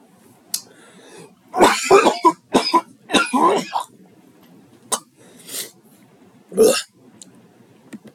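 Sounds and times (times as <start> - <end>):
wet phlegmy coughing: 1.6 - 3.9.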